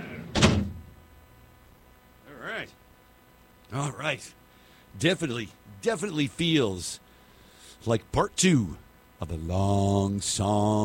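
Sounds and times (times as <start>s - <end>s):
heavy door shutting with a loud thud: 0.0s - 0.9s
speech: 2.6s - 2.8s, 3.7s - 7.0s, 7.8s - 10.8s.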